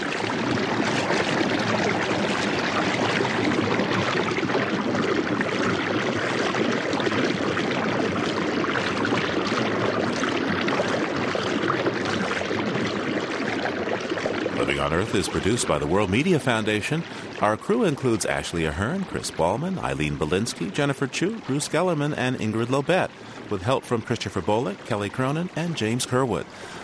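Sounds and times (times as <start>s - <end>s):
cascading water in a mountain gorge: 0.0s - 26.8s
speech: 15.0s - 26.8s.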